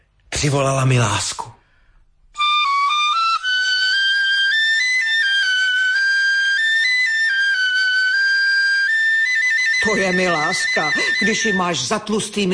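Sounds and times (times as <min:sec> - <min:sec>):
speech: 0:00.4 - 0:01.6, 0:09.9 - 0:12.5
Tatar whistle playing slow melody of long held notes: 0:02.4 - 0:11.8.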